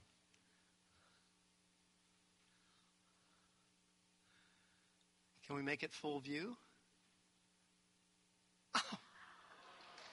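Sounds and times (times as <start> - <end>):
speech: 5.4 - 6.7
person sneezing: 8.8 - 9.2.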